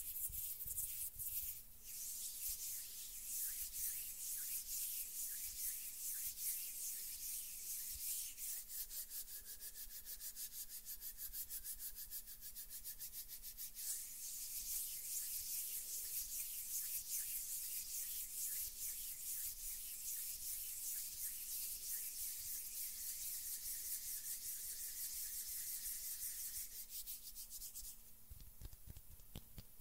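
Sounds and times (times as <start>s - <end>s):
hands rubbing together, skin on skin: 0.0s - 29.0s.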